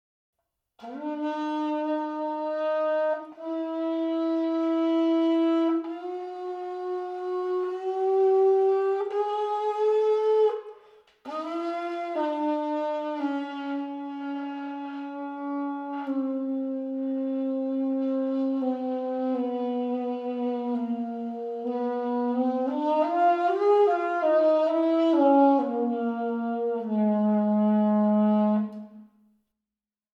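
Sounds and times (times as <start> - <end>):
soprano saxophone playing held single notes and legato notes alla tromba: 0.8 - 29.0.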